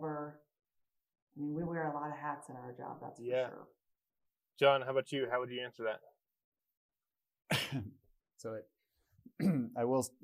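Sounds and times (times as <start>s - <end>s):
speech: 1.4s - 3.8s, 4.6s - 6.1s, 7.5s - 8.7s, 9.3s - 10.2s
person coughing: 7.5s - 8.0s, 9.4s - 9.8s
throat clearing: 7.5s - 8.0s, 9.3s - 9.8s
voiced grunts: 9.4s - 9.8s.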